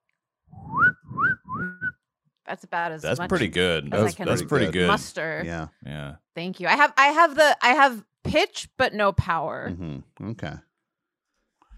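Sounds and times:
person whistling a short tune: 0.6s - 2.0s
speech: 2.5s - 10.7s
laughter: 3.1s - 6.1s, 9.7s - 10.6s.

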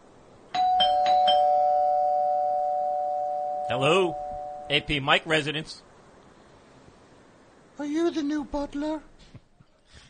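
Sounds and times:
faint hiss: 0.0s - 10.0s
doorbell ringing with bright chimes: 0.5s - 4.9s
speech: 3.7s - 5.9s, 7.8s - 9.1s.

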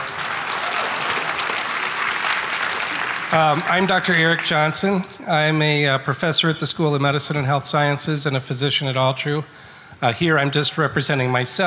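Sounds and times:
audience applause at an event: 0.0s - 4.7s
speech: 3.3s - 11.6s.

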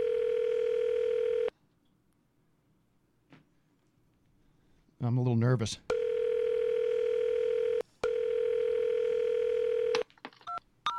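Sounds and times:
telephone dial tone while placing a prank call: 0.0s - 1.5s, 5.9s - 10.9s
speech: 5.0s - 6.0s.

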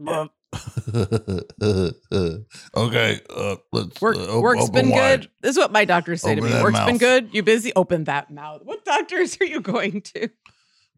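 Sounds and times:
speech: 0.0s - 10.5s
loud burp: 0.1s - 4.4s
laughter: 0.6s - 5.2s, 6.3s - 7.0s.

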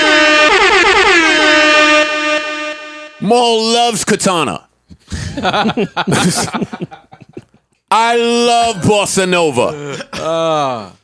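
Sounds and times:
air horn blast: 0.0s - 3.4s
speech: 3.3s - 7.2s, 7.9s - 11.0s
laughter: 5.1s - 7.7s.

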